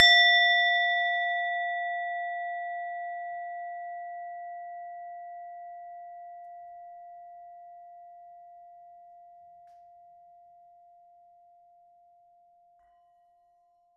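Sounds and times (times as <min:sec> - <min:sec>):
small Tibetan singing bowl struck hard: 0:00.0 - 0:03.8.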